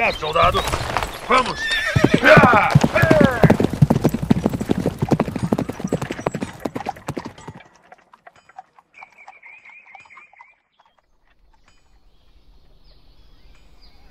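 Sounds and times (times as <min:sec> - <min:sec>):
speech: 0:00.0 - 0:03.0
horse hooves clip-clopping in a fast steady rhythm: 0:00.5 - 0:10.2
horse whinnying loudly: 0:01.4 - 0:07.6.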